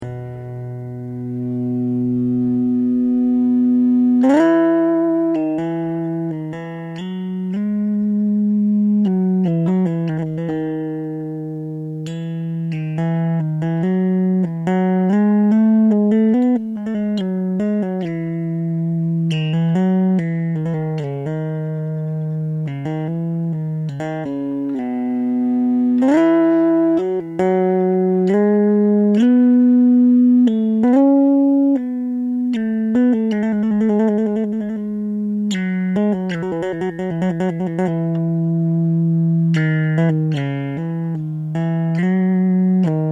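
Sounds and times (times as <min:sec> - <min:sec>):
bass guitar played with E-bow: 0:00.0 - 0:43.1.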